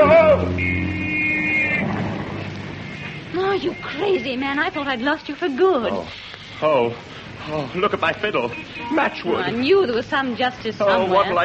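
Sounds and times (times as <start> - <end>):
car rushing past in a near miss: 0.0 - 3.4
speech: 3.6 - 11.4.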